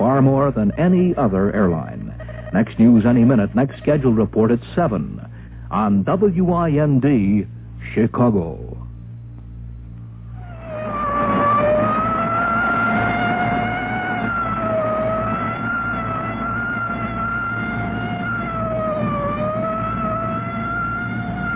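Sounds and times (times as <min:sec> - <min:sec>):
low fire engine rumble: 0:00.0 - 0:21.5
speech: 0:00.2 - 0:08.7
fire engine siren wailing through streets: 0:10.4 - 0:21.5.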